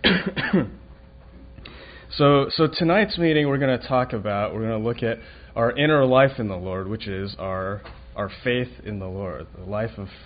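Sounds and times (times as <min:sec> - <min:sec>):
throat clearing and rough cough from allergies: 0:00.0 - 0:00.8
speech: 0:00.2 - 0:00.8, 0:02.2 - 0:10.2.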